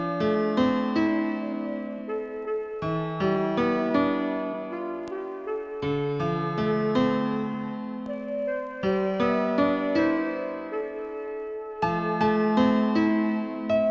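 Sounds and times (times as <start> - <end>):
gentle 432 Hz tone: 0.2 - 13.8.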